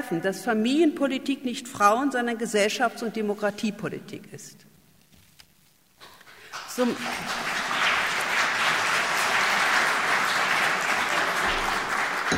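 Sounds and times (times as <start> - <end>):
speech: 0.0 - 4.7, 6.8 - 7.4
audience applause: 6.3 - 12.3.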